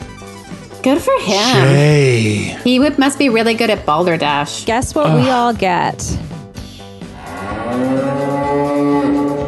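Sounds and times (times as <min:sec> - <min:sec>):
speech: 0:00.8 - 0:06.3
cartoon cow mooing sound effect: 0:07.2 - 0:09.4.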